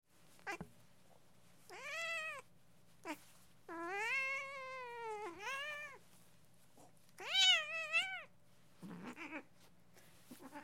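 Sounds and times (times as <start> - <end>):
angry cat giving drawn-out wavering yowls and sharp meows: 1.7 - 2.4, 3.1 - 6.0, 7.2 - 8.3.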